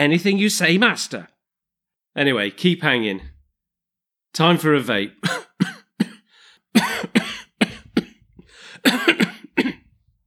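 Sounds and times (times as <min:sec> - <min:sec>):
speech: 0:00.0 - 0:01.3, 0:02.2 - 0:03.3, 0:04.3 - 0:05.4
person coughing harshly: 0:05.2 - 0:10.0
raspy breaths: 0:06.2 - 0:07.8, 0:08.4 - 0:08.9.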